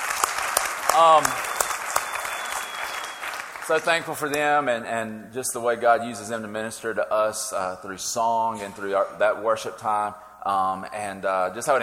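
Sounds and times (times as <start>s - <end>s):
audience applauding for a worship team: 0.0s - 4.3s
speech: 1.0s - 1.5s, 3.7s - 11.8s.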